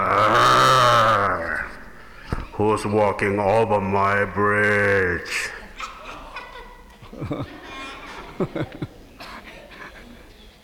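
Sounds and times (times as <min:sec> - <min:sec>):
person imitating a billy goat's bleat: 0:00.0 - 0:02.2
speech: 0:02.6 - 0:05.6, 0:07.2 - 0:07.6, 0:08.4 - 0:08.9
laughter: 0:04.3 - 0:10.6.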